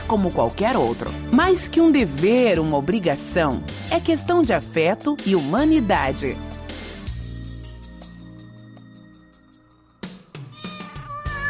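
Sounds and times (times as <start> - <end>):
speech: 0.1 - 6.5
cat meowing: 10.4 - 11.4.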